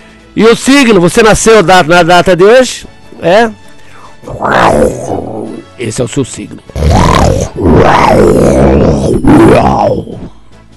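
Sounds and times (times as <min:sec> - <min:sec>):
speech: 0:00.4 - 0:03.6, 0:04.2 - 0:05.2, 0:05.8 - 0:10.3
lion roaring: 0:04.2 - 0:05.8, 0:06.6 - 0:10.3.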